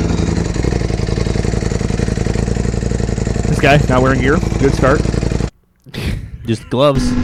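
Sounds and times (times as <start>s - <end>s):
Ducati Panigale motorcycle engine revving: 0.0s - 5.6s
speech: 3.6s - 5.2s, 6.5s - 7.2s.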